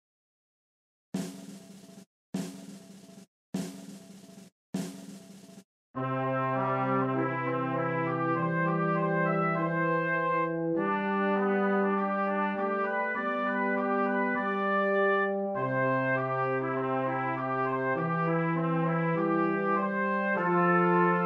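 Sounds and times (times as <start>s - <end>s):
instrumental trumpet march: 6.0s - 21.2s.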